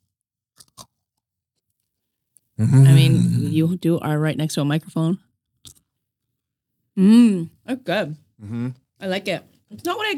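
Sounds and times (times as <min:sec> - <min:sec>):
person biting into a spicy crispy snack with seaweed pieces: 0:00.6 - 0:00.9
speech: 0:02.6 - 0:05.2, 0:07.0 - 0:10.1.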